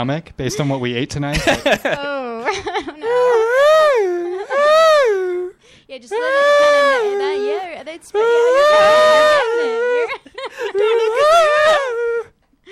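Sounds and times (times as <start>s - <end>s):
speech: 0.0s - 4.2s, 5.9s - 12.1s
laughter: 0.6s - 4.7s, 8.5s - 12.3s
person performing loud high-pitched practice screams: 3.0s - 10.2s, 10.8s - 12.3s.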